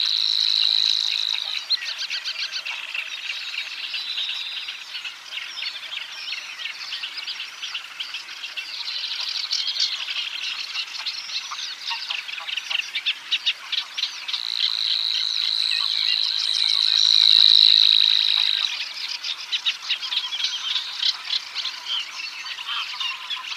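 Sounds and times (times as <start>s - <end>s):
Savi's warbler song: 0.0s - 23.5s.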